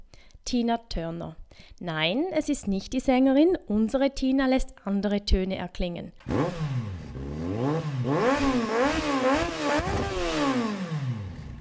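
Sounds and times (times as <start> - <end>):
speech: 0.5 - 6.8
rally car engines revving loudly: 6.2 - 11.6.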